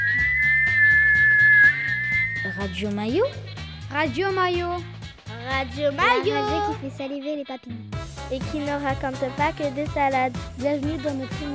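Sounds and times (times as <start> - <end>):
pressure cooker whistling: 0.0 - 3.6
low rhythmic chugging: 0.0 - 11.5
speech: 2.6 - 11.5.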